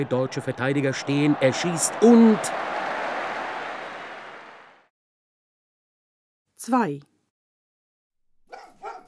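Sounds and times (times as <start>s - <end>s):
speech: 0.0s - 2.8s, 6.6s - 7.1s
dog barking: 8.5s - 9.0s.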